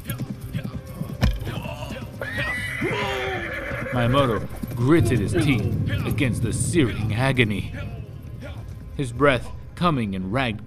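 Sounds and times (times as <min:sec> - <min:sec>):
rhythmic horse hoofbeats: 0:00.0 - 0:09.6
horse struck by an arrow whinnying shrilly: 0:02.1 - 0:05.6
speech: 0:04.0 - 0:07.9, 0:09.0 - 0:10.6.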